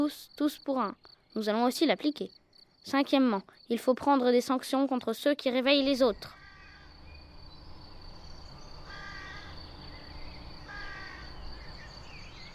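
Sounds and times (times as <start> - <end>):
high continuous insect trill: 0.0 - 12.5
steady outdoor hum: 0.0 - 12.5
speech: 0.1 - 6.4
harsh crow caws: 6.3 - 7.0, 8.8 - 9.6, 10.6 - 11.7.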